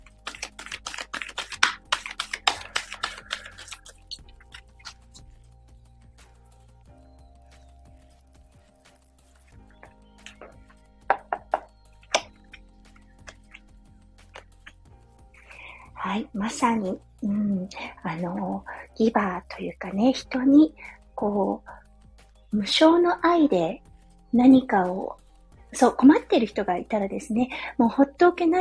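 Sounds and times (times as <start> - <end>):
tarot cards being shuffled by hand: 0.0 - 5.3, 9.7 - 11.3, 12.0 - 14.8
soft steady music: 0.0 - 28.5
speech: 16.4 - 21.7, 22.5 - 28.5.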